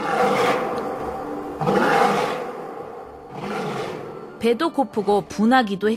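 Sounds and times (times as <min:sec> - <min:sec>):
lion roaring loudly: 0:00.0 - 0:04.4
speech: 0:04.4 - 0:05.9.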